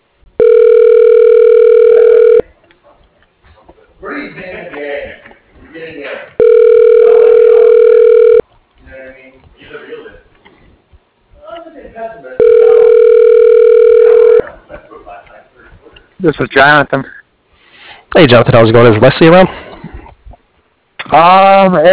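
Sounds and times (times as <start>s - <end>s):
telephone ringback tone while a call is being connected: 0.4s - 2.4s, 6.4s - 8.4s, 12.4s - 14.4s
thin phone-line sound: 0.4s - 2.4s, 6.4s - 8.4s, 12.4s - 14.4s
speech: 16.2s - 17.2s, 18.2s - 19.6s, 21.1s - 21.9s.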